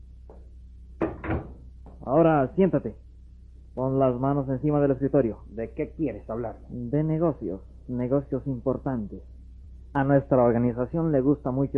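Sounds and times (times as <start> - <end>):
faint low hum: 0.0 - 11.7
office door opening with a wooden clack: 1.0 - 1.6
speech: 2.1 - 3.1, 3.8 - 9.3, 10.0 - 11.7.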